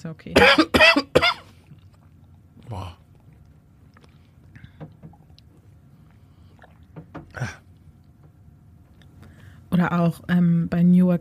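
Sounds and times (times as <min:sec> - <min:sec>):
speech: 0:00.0 - 0:01.4, 0:02.7 - 0:03.0, 0:09.8 - 0:11.1
harsh raspy coughs: 0:00.4 - 0:01.6.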